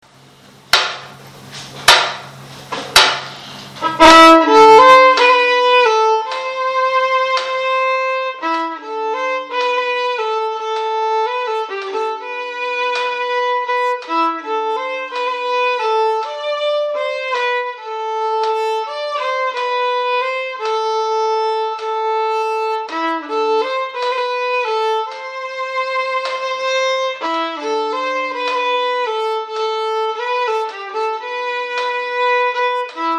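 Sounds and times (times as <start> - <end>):
violin waltz: 3.8 - 33.1.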